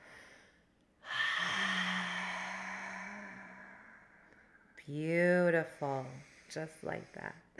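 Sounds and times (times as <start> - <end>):
long breathy exhale releasing held breath: 1.0 - 4.3
speech: 4.9 - 7.5.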